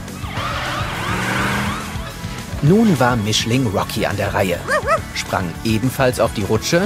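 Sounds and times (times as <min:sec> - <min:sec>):
police car siren wailing: 0:00.2 - 0:02.2
speech: 0:02.6 - 0:06.8.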